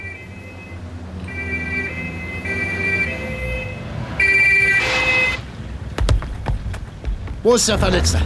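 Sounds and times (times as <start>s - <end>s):
ambulance siren wailing in a two-tone pattern: 0.0s - 5.5s
ambulance engine rumble: 0.0s - 8.2s
speech: 7.4s - 8.2s.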